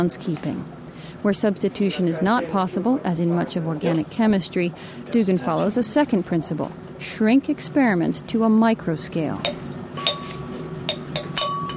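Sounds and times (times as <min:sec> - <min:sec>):
speech: 0:00.0 - 0:09.6
steady low hum: 0:00.0 - 0:11.7
small glass vial clinking in a chemistry lab under an enclosed exhaust hood: 0:09.4 - 0:11.7.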